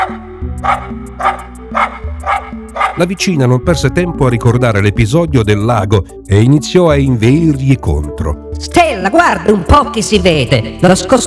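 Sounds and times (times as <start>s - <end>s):
small female dog barking: 0.0s - 3.0s
sustained tonal background: 0.0s - 11.2s
speech: 0.6s - 11.2s.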